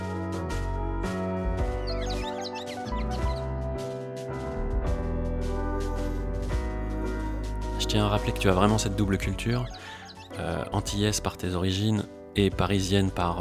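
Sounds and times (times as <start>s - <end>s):
music track with piano-like chords and drum hits: 0.0s - 13.3s
birdsong recorded in Martinique: 1.0s - 4.1s, 5.8s - 11.4s
speech: 7.9s - 13.3s.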